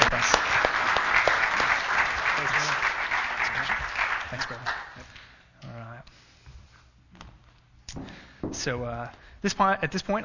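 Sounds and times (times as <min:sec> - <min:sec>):
audience applause: 0:00.0 - 0:05.0
speech: 0:08.6 - 0:10.2.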